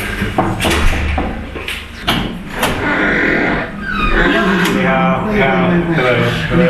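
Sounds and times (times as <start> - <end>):
apartment door being unlatched and opened in Beijing: 0.2 - 4.9
voices from a secret church: 2.1 - 6.6.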